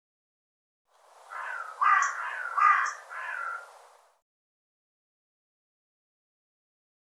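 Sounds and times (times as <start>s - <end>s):
bird giving rough hoarse caws: 1.3s - 4.0s.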